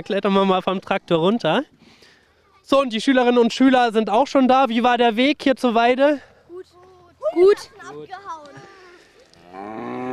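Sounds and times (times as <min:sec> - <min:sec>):
speech: 0:00.0 - 0:02.0, 0:02.6 - 0:06.3, 0:07.3 - 0:08.6, 0:09.6 - 0:10.0
cattle mooing on a pasture: 0:09.4 - 0:10.1.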